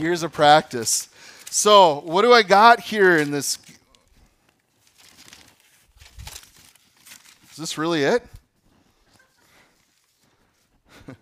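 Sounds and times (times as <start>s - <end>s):
speech: 0.0s - 3.7s, 7.6s - 8.4s
paper wrapping of a gift box crinkling and tearing: 0.0s - 4.1s, 4.8s - 7.9s
paper rustling: 0.0s - 10.8s.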